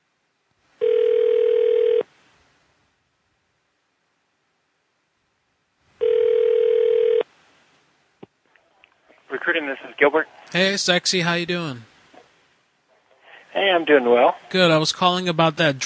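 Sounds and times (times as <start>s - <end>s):
telephone ringback on an outgoing call: 0.8s - 2.1s, 6.0s - 7.2s
speech: 10.0s - 11.9s, 13.8s - 15.8s.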